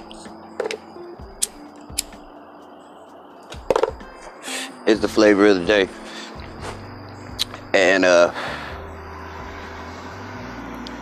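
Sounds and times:
broadband road noise: 0.0s - 11.0s
speech: 4.9s - 6.0s, 8.0s - 8.5s
heavy vehicle rumbling past outside: 8.3s - 11.0s.

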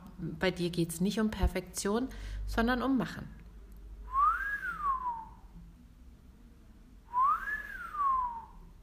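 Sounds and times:
speech: 0.2s - 3.4s
person whistling rising-and-falling tones: 4.1s - 5.5s, 7.1s - 8.7s.

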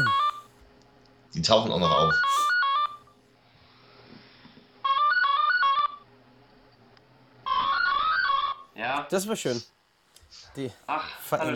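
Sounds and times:
mobile phone ringtone with bright electronic beeping melody: 0.0s - 0.5s, 1.8s - 3.0s, 4.8s - 6.0s, 7.5s - 8.6s
speech: 1.3s - 2.5s, 9.1s - 11.5s.

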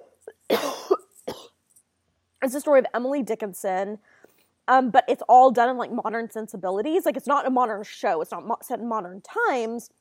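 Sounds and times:
person coughing harshly: 0.3s - 1.6s
speech: 2.4s - 9.9s.

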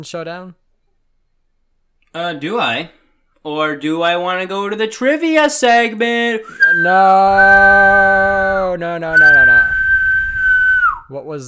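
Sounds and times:
speech: 0.0s - 0.6s, 2.1s - 9.8s, 11.1s - 11.4s
person whistling one long steady note: 6.5s - 11.1s.

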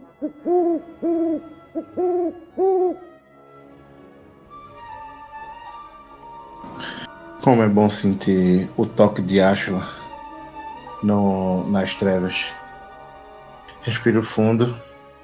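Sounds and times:
owl hooting in paired calls: 0.0s - 3.1s
speech: 0.2s - 3.1s, 6.8s - 10.0s, 11.0s - 12.6s, 13.8s - 14.9s.

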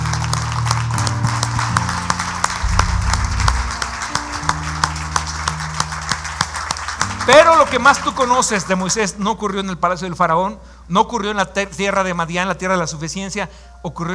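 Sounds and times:
audience applauding loudly: 0.0s - 9.0s
sustained low keyboard chords: 0.0s - 9.8s
speech: 7.7s - 14.1s.

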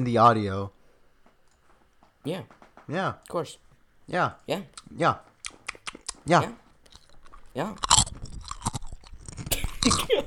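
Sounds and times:
speech: 0.0s - 0.8s, 2.2s - 6.6s, 7.6s - 8.2s, 9.8s - 10.2s
crunching a potato chip: 5.4s - 10.0s.

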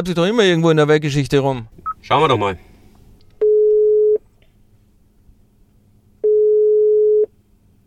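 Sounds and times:
speech: 0.0s - 2.7s
faint hum: 0.0s - 7.8s
phone call ringing tones from a car in a traffic jam: 3.4s - 4.2s, 6.2s - 7.3s.

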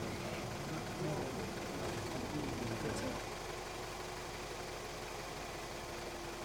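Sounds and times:
van engine idling on a ferry: 0.0s - 6.4s
voices murmuring: 0.2s - 3.3s.

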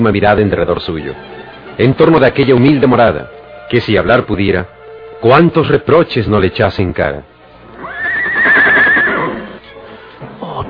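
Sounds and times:
speech: 0.0s - 7.3s
horse neighing: 7.8s - 9.6s.

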